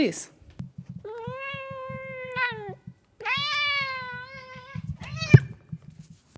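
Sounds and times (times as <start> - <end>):
speech: 0.0 - 0.4
low rhythmic rumbling: 0.4 - 6.3
cat yowling while being petted: 0.9 - 5.6.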